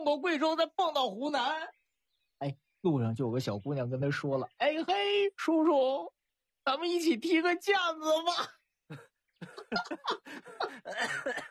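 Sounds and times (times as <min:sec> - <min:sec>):
speech: 0:00.0 - 0:01.8, 0:02.4 - 0:11.4
person laughing breathily: 0:08.9 - 0:11.4
person coughing after choking on laughter: 0:09.4 - 0:11.4.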